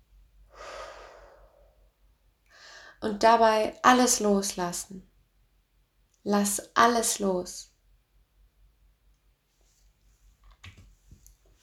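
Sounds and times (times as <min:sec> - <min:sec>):
slow deep exhale during a guided meditation: 0:00.5 - 0:03.0
speech: 0:03.0 - 0:05.1, 0:06.2 - 0:07.7.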